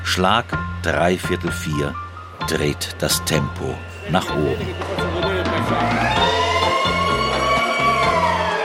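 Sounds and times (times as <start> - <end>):
speech: 0.1 - 5.0, 5.7 - 6.3
siren wailing in a wholesale fish market hall as the gates open: 4.1 - 8.6.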